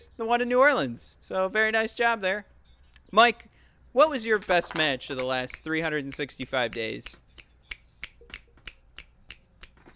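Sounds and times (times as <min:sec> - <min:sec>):
speech: 0:00.2 - 0:02.5, 0:03.1 - 0:07.2
finger snapping: 0:05.2 - 0:09.8.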